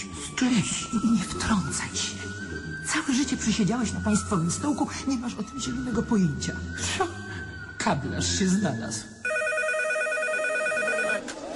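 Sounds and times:
speech: 0.4 - 9.2
electronic telephone ringing with buzzing multi-tone warble: 9.2 - 11.3.

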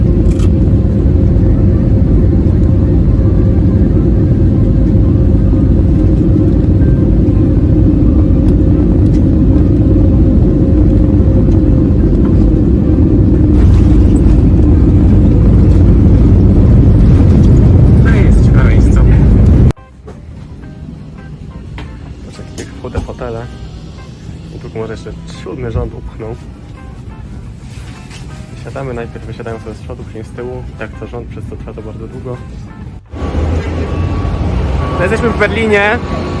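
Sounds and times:
low-cost airline passenger jet landing at an airport: 0.0 - 36.3
speech: 25.6 - 26.5, 28.8 - 32.7, 35.0 - 36.3.

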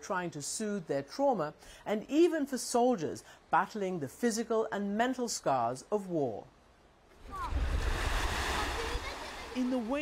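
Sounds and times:
speech: 0.0 - 6.5, 9.6 - 10.0
surf waves on a Black Sea beach on the Odessa coastline: 7.2 - 10.0.

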